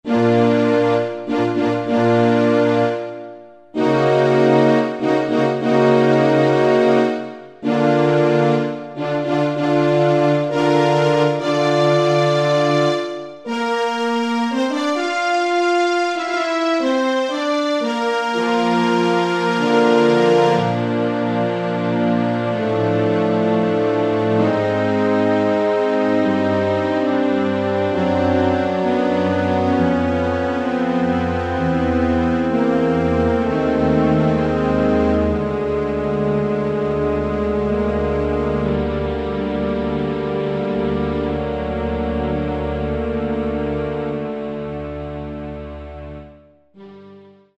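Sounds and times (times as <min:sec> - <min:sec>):
Yamaha QY70 Orchestra 2 XG voice: 0:00.0 - 0:47.5.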